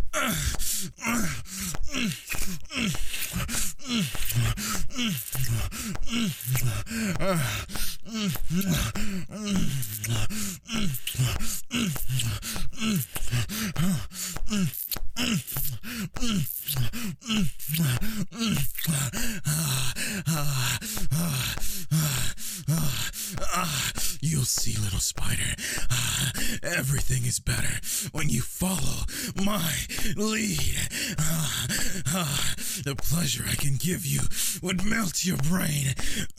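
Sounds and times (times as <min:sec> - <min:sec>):
person gasping with quick sharp intakes of breath: 0:00.0 - 0:36.3
person moaning breathily: 0:00.0 - 0:36.3
speech: 0:00.2 - 0:02.2, 0:32.9 - 0:36.3.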